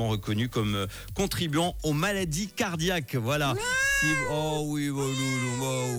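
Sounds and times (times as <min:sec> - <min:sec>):
speech: 0:00.0 - 0:05.9
cat meowing: 0:03.5 - 0:05.9.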